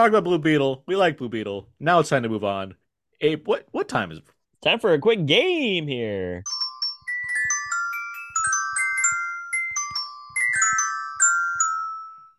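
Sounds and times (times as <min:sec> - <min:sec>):
speech: 0:00.0 - 0:06.5
short bright xylophone jingle: 0:06.5 - 0:12.3.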